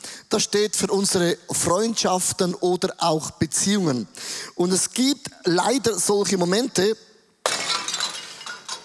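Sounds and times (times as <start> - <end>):
speech: 0.3 - 7.1
flower pot smashing: 7.5 - 8.8
shards of flower pot rattling and clinking: 7.5 - 8.8.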